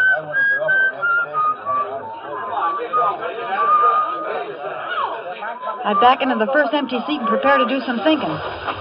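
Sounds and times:
person whistling a tune in a train car: 0.0 - 4.6
murmur of people chattering in a train car: 0.0 - 8.7
speech: 5.8 - 8.7.

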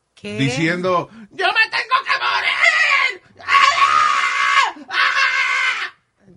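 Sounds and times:
speech: 0.2 - 1.7
young woman passenger screaming on a plane nearing landing: 2.0 - 6.0.

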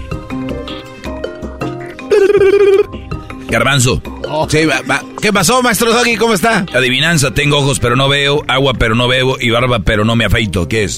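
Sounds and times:
telephone ringing during a call: 2.1 - 2.9
speech: 3.5 - 10.9.

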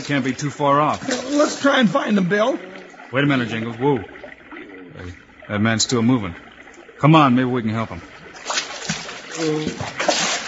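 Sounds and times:
water splashing and sloshing as a man is lifted: 0.0 - 10.4
speech: 0.1 - 4.2, 5.0 - 6.4, 7.0 - 8.1, 9.4 - 10.0.

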